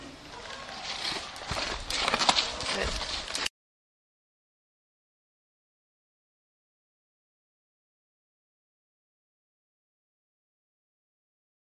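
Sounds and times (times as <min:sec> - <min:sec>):
horse hooves clip-clopping at a walking pace: 0:00.3 - 0:03.5.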